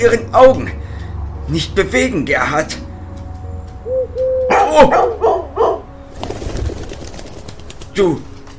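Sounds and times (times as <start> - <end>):
speech: 0.0 - 0.8, 1.5 - 2.8, 4.8 - 5.3, 8.0 - 8.3
pigeon softly cooing: 3.8 - 5.8
dog barking: 4.5 - 5.9.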